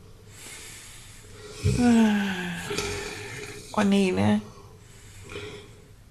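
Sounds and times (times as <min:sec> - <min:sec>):
quiet hum: 0:00.0 - 0:06.0
speech: 0:01.6 - 0:02.8, 0:03.8 - 0:04.5
person muttering: 0:01.6 - 0:03.2
voice imitating the snores of a robot character: 0:01.6 - 0:03.6.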